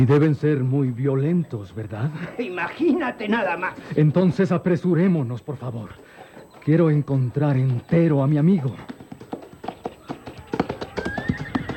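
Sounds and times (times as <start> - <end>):
speech: 0.0 - 9.0
horse hooves clip-clopping on a hard surface: 2.5 - 11.7
horse neighing with a rising drawn-out whinny: 10.0 - 11.7.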